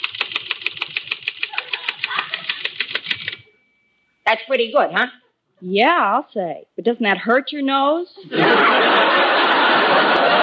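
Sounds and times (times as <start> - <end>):
typewriter clacking: 0.0 - 3.4
laughter: 1.5 - 2.8, 8.2 - 10.4
speech: 4.3 - 10.4.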